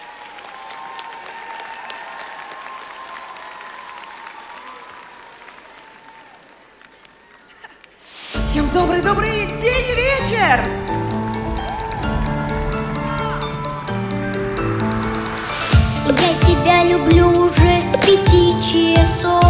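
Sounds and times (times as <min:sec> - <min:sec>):
audience applauding: 0:00.0 - 0:08.4, 0:09.6 - 0:17.0
loud music: 0:08.3 - 0:19.4
speech: 0:08.6 - 0:11.0, 0:16.7 - 0:19.4.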